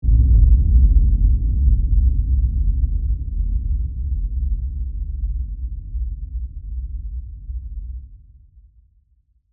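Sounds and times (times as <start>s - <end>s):
low-frequency rumbling horror hit with scary tone: 0.0s - 7.5s.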